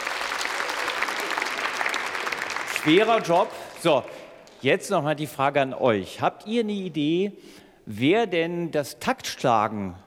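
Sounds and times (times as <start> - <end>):
audience applause at an orchestral concert: 0.0 - 4.3
speech: 2.8 - 10.0.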